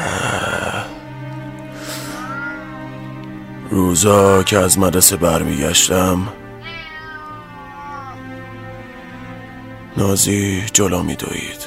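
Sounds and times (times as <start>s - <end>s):
cat meowing in yowling caterwaul-like calls: 1.8s - 3.3s, 6.6s - 9.4s
speech: 3.7s - 6.5s, 10.0s - 11.6s.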